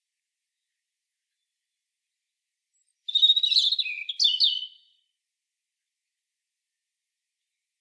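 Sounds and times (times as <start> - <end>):
European robin singing: 2.8 - 5.0.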